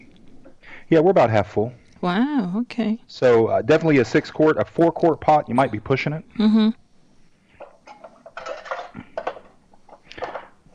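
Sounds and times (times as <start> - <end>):
speech: 0.9 - 6.8
metal cans clinking and scraping as one is stuffed inside another: 7.6 - 10.6.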